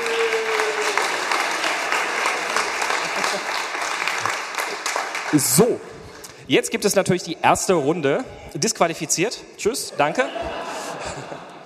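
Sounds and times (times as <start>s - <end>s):
audience applause: 0.0s - 5.7s
laughter: 2.7s - 3.8s, 9.9s - 11.6s
speech: 5.3s - 5.9s, 6.5s - 11.3s.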